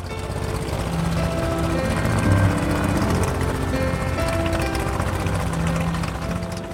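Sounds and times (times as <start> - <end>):
small propeller plane engine running on a jungle airstrip: 0.0 - 6.7.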